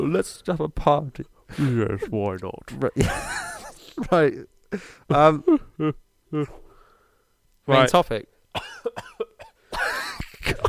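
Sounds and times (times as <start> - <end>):
speech: 0.0 - 6.6, 7.7 - 9.2
laughter: 3.0 - 4.2
ill person coughing: 8.6 - 10.6.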